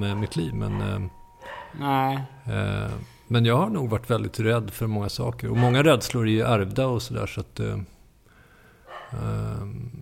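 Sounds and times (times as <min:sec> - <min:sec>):
speech: 0:00.0 - 0:07.9, 0:09.1 - 0:10.0
dog giving a low growly bark: 0:00.1 - 0:01.8, 0:05.6 - 0:05.9, 0:08.9 - 0:09.2.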